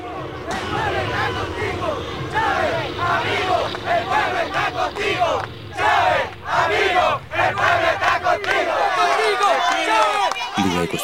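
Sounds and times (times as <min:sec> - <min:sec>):
large crowd of supporters shouting and chanting in unison: 0:00.0 - 0:11.0
speech: 0:03.9 - 0:11.0.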